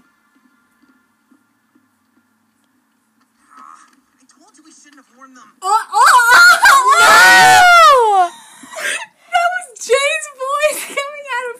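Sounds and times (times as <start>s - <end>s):
person yelling in a long strained outburst: 5.6s - 8.3s.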